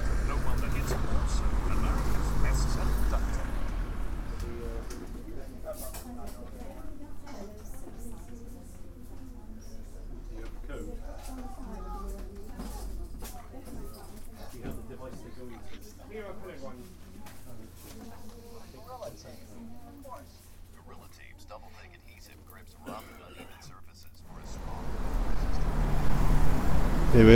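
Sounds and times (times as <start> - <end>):
cars passing on a busy street: 0.0 - 6.9, 24.2 - 27.3
indistinct voices on a street: 0.0 - 15.5, 20.8 - 27.3.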